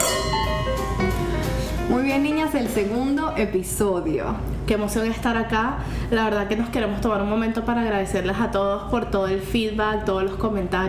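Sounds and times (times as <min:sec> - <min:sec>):
drinking glasses clinking together in a toast: 0:00.0 - 0:00.8
speech: 0:01.9 - 0:10.8.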